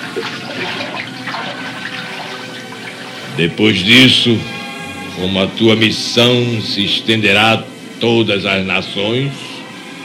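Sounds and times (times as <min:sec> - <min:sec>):
water pouring and splashing during a baptism: 0:00.0 - 0:03.4
speech: 0:00.2 - 0:02.1, 0:03.4 - 0:04.6, 0:05.2 - 0:09.5.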